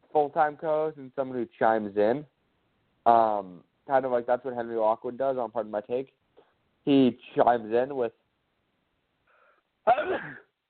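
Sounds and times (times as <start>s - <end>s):
speech: 0.2s - 2.4s, 3.0s - 6.2s, 6.8s - 8.2s, 9.8s - 10.4s
sneeze: 9.9s - 10.5s.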